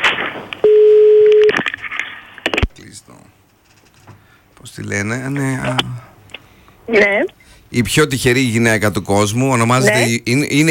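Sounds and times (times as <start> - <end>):
telephone tone beep as a call is placed: 0.6 - 1.6
speech: 4.7 - 6.1, 6.9 - 10.6.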